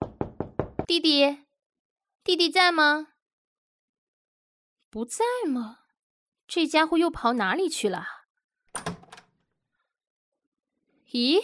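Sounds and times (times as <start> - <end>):
speech: 0.9 - 1.4, 2.2 - 3.1, 4.9 - 5.8, 6.5 - 8.2, 11.1 - 11.4
house door being opened with wood and latch knocking: 8.8 - 9.3.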